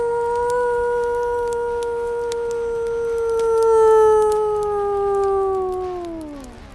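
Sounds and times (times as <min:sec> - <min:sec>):
wolf howling: 0:00.0 - 0:06.7.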